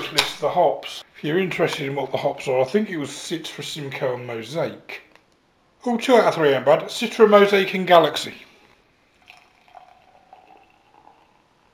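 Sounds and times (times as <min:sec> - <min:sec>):
speech: 0:00.1 - 0:05.1, 0:05.8 - 0:08.5
beer pouring into a glass: 0:09.1 - 0:11.7.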